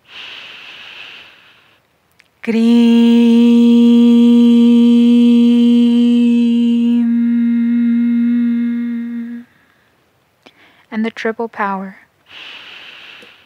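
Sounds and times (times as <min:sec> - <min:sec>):
deep inhaling breath: 0:00.0 - 0:01.8, 0:12.3 - 0:13.4
speech: 0:02.4 - 0:03.2, 0:11.0 - 0:12.6
loud sustained tone with rich harmonics: 0:02.4 - 0:09.5.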